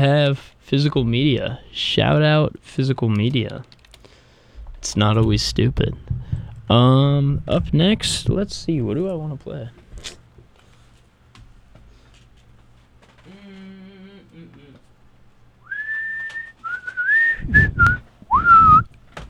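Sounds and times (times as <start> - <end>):
speech: 0.0 - 3.8, 4.8 - 10.2
low hum: 4.5 - 10.0
person whistling a tune: 15.6 - 18.9.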